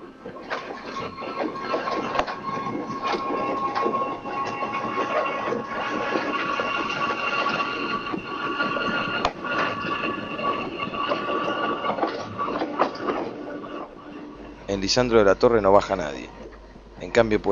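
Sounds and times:
commuter train rattling clickety-clack: 0.0 - 17.5
commuter train rumbling inside a windowless carriage: 0.0 - 17.5
speech: 14.8 - 17.5.

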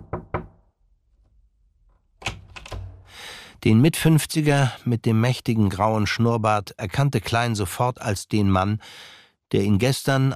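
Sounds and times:
knocking on an office door: 0.0 - 0.6
speech: 3.6 - 10.3.

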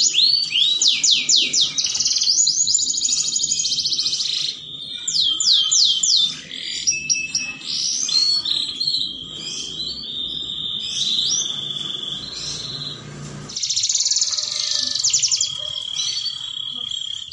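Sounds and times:
Belgian canary song with trills, chirps and warbled notes: 0.0 - 17.3.

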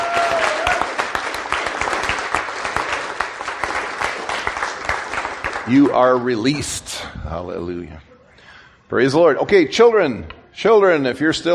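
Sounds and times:
audience applause from a sizable gathering: 0.0 - 6.2
speech: 5.7 - 8.1, 8.9 - 11.5.

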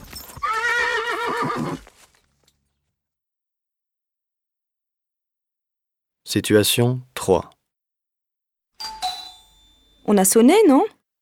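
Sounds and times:
horse hooves clopping: 0.0 - 2.5
horse neighing during riding: 0.4 - 1.8
speech: 6.3 - 7.6, 10.1 - 11.0.

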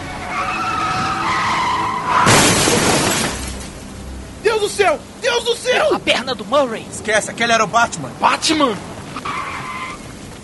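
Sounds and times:
car tires squealing under hard braking: 0.0 - 3.5, 7.6 - 10.4
speech: 4.9 - 9.3.

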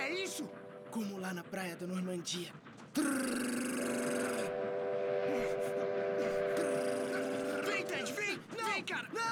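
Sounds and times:
train horn on a railway line: 0.0 - 1.3, 3.0 - 8.4
low rumble of an approaching train: 0.0 - 9.3
speech: 0.3 - 4.2.

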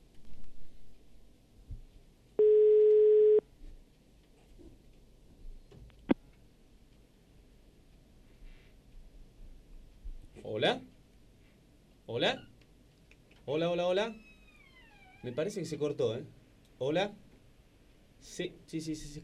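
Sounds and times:
hiss: 0.0 - 19.2
telephone ring tone on the line: 2.4 - 3.4
speech: 13.5 - 14.2, 15.2 - 17.2, 18.2 - 19.2.

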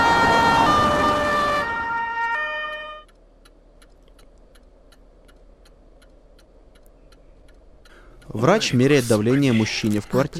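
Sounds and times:
ambulance siren wailing as it speeds through city streets: 0.0 - 3.1
road and engine noise: 0.0 - 10.3
speech: 8.3 - 10.3.

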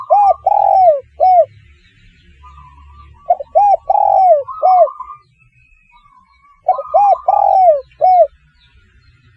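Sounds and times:
spotted dove cooing: 0.0 - 1.5, 2.5 - 5.2, 6.6 - 8.3.

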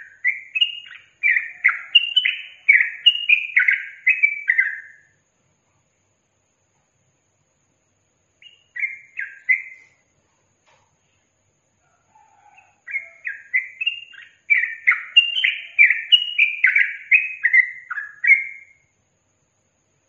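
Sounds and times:
yellow-vented bulbul singing: 0.0 - 5.2, 7.6 - 10.2, 12.1 - 20.0.

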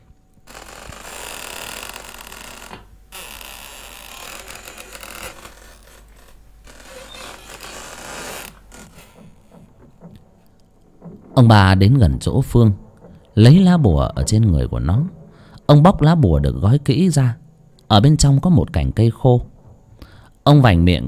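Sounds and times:
old door hinges creaking as a door opens into a house: 0.4 - 11.5
speech: 11.4 - 12.8, 13.4 - 19.5, 20.5 - 21.0.

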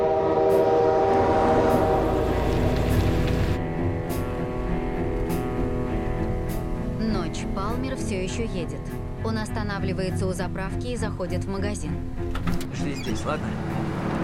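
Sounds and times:
train horn: 0.0 - 3.6
passing train rumbling: 0.0 - 9.4, 12.6 - 14.2
speech: 8.1 - 14.0.

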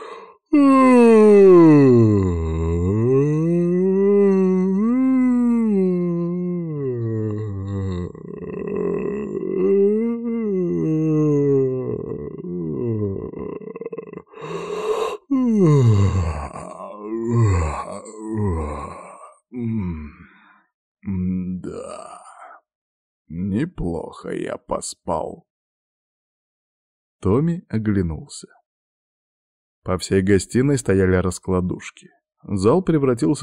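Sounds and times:
long drawn-out human yawn in a living room in the morning: 0.0 - 20.5, 21.1 - 22.6
speech: 24.2 - 25.5, 27.2 - 28.6, 29.8 - 33.4.

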